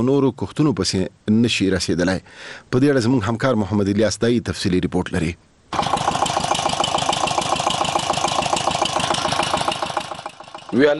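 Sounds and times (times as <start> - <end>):
speech: 0.0 - 5.9, 10.7 - 10.9
water pump engine drawing water from deep wells to irrigate a melon field: 5.7 - 10.9.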